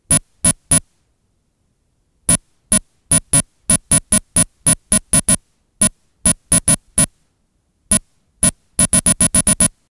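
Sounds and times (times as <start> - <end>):
tape data signal: 2.3 - 7.1, 7.9 - 9.8.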